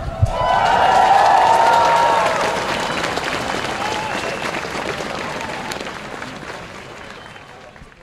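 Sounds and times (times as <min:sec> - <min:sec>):
crowd clapping at a school strike protest: 0:00.3 - 0:08.0.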